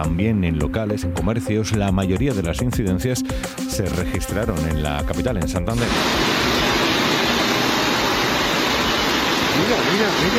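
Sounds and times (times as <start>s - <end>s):
speech: 0.0s - 6.5s, 9.6s - 10.3s
floodwater torrent rushing down a street: 5.8s - 10.3s.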